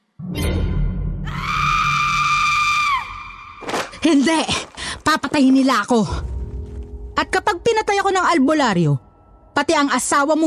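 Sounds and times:
woman screaming: 1.2s - 3.5s
speech: 4.0s - 6.3s, 7.2s - 9.0s, 9.6s - 10.4s.

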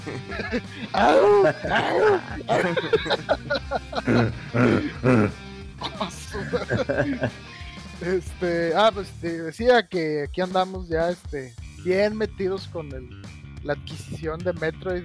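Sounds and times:
laughter: 0.0s - 7.4s
speech: 0.0s - 15.0s
person imitating a howl: 0.9s - 2.5s.

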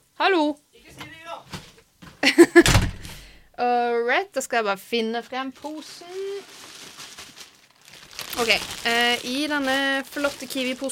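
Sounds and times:
speech: 0.2s - 0.6s, 3.6s - 6.6s, 8.4s - 10.9s
door slamming shut: 2.6s - 3.2s.

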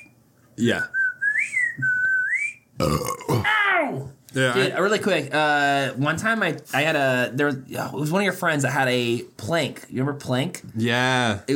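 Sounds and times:
speech: 0.6s - 1.0s, 1.8s - 2.0s, 2.8s - 11.5s
person whistling a cartoonish tune: 0.7s - 2.6s.

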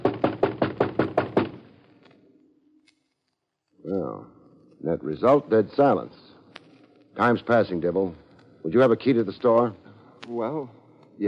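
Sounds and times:
banging on a door: 0.0s - 1.7s
speech: 4.0s - 6.2s, 7.2s - 11.2s.

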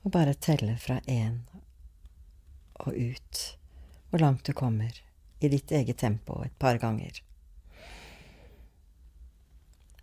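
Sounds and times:
speech: 0.0s - 1.6s, 2.8s - 8.0s
low steady hum: 0.0s - 10.0s
slow airy breath in and out: 7.6s - 8.8s.

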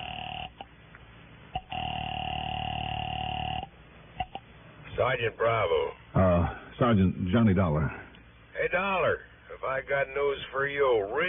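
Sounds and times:
telephone dial tone in a phone booth: 1.6s - 4.4s
speech: 5.0s - 8.0s, 8.8s - 11.2s.

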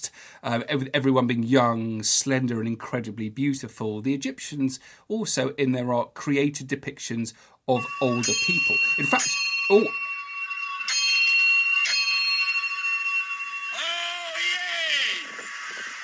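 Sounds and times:
speech: 0.4s - 10.1s
town crier's handbell ringing: 7.8s - 15.9s.

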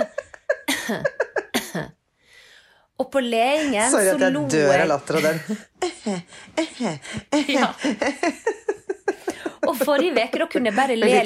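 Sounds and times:
person coughing: 0.7s - 2.0s
speech: 0.9s - 2.0s, 3.0s - 8.6s, 9.6s - 11.2s.

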